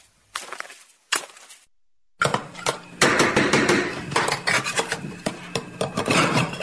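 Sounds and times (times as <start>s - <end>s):
sharp metallic knocks: 2.2s - 4.4s
cook clattering and scraping pots and pans in a kitchen: 2.2s - 6.6s.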